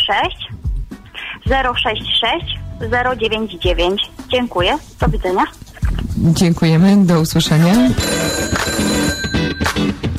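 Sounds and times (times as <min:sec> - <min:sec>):
speech: 0:00.1 - 0:00.6, 0:01.5 - 0:05.6, 0:06.2 - 0:08.5
telephone ringing with electronic trills for an incoming call: 0:07.8 - 0:10.0.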